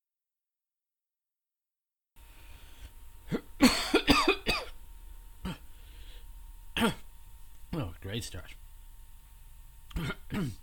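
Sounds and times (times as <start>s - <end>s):
wet coughs after swallowing orange the wrong way: 3.2s - 4.8s, 5.4s - 5.6s, 6.8s - 7.1s, 9.9s - 10.6s
speech: 8.2s - 8.6s, 10.0s - 10.6s.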